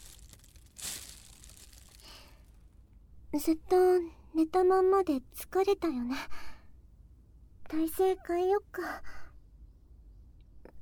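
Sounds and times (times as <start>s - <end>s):
plastic bag crinkling as item is bagged: 0.0s - 2.6s
speech: 3.3s - 6.4s, 7.7s - 9.1s.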